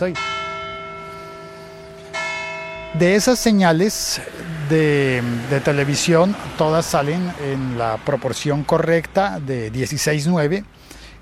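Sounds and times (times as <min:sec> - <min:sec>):
speech: 0:00.0 - 0:00.3, 0:02.9 - 0:11.2
resonant bell ringing: 0:00.0 - 0:06.7.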